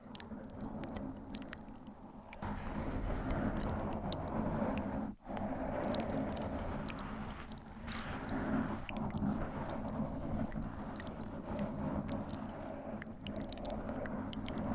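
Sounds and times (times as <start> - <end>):
gentle mic scratching: 0.0 - 14.7
soft inaudible whispering: 0.0 - 14.7.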